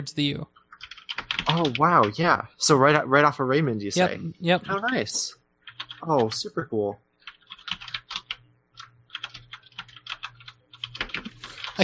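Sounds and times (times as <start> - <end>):
speech: 0.0 - 0.6, 1.4 - 5.4, 6.0 - 7.0
low steady hum: 0.0 - 11.8
typing on a computer keyboard: 0.6 - 2.2, 5.6 - 6.4, 7.2 - 11.8.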